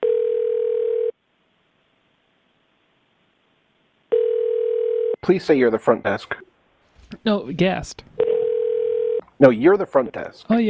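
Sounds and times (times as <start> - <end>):
telephone line tone while a call is transferred: 0.0 - 1.2, 4.1 - 5.2, 8.2 - 9.2
speech: 5.3 - 6.5, 7.2 - 8.1, 9.4 - 10.6.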